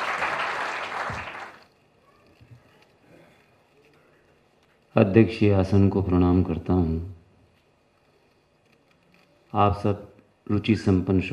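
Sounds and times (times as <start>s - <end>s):
crowd applauding: 0.0s - 1.8s
speech: 5.0s - 7.2s, 9.5s - 11.3s.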